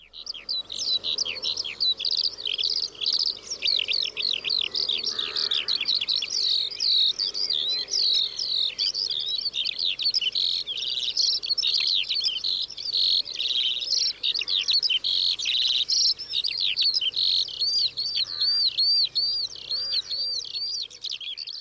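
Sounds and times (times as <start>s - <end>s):
Eurasian skylark singing: 0.0s - 21.5s.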